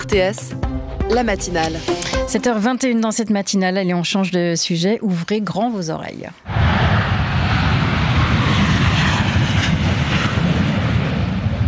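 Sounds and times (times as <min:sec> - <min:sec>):
speech: 0:00.0 - 0:06.5
F/A-18 fighter jet engine roar at Payerne airport: 0:06.5 - 0:11.6.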